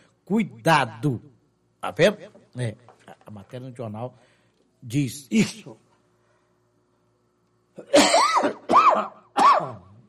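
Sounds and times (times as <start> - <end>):
speech: 0.3 - 5.8, 7.8 - 9.9
harsh raspy coughs: 7.8 - 10.0.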